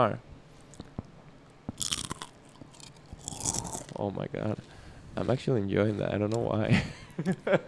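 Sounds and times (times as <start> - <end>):
speech: 0.0 - 0.3, 4.0 - 7.6
chip crunching: 1.7 - 4.1
crisp crackly chewing of a chip: 1.7 - 6.4
laughter: 6.7 - 7.6.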